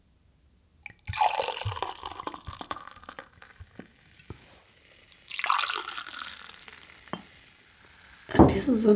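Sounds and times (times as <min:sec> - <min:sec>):
fizzing drink being poured into a glass: 0:00.8 - 0:08.4
light glass clinks: 0:00.9 - 0:03.9, 0:05.3 - 0:07.4
speech: 0:08.5 - 0:08.9.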